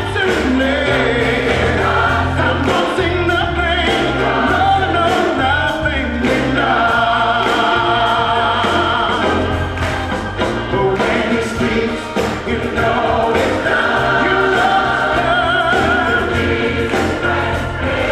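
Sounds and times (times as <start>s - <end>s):
solo choir band: 0.2s - 18.0s.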